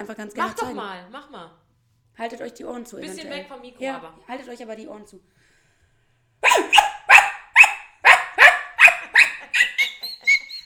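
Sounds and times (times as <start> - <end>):
speech: 0.0 - 1.6, 2.2 - 5.5
person imitating dog barking: 6.4 - 10.4.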